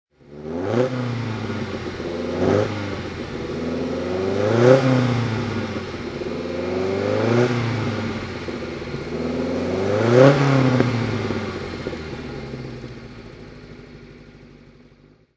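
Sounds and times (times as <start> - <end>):
Alfa Romeo GT 1600 rally car engine throttle: 0.2 - 15.2.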